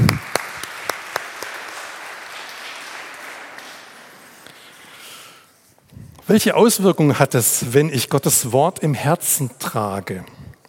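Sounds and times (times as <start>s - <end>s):
crowd applauding: 0.0s - 4.7s
speech: 6.3s - 10.4s.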